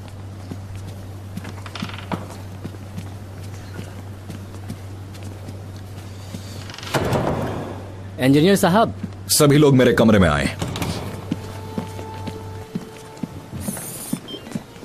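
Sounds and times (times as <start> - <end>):
low steady hum: 0.0 - 14.8
door mechanism clicking and creaking as the door is opened: 6.6 - 7.8, 10.5 - 11.4
speech: 8.2 - 10.6.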